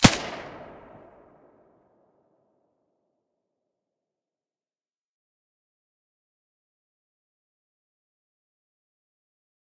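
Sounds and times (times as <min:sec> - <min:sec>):
silenced weapon gunshot: 0:00.0 - 0:01.3.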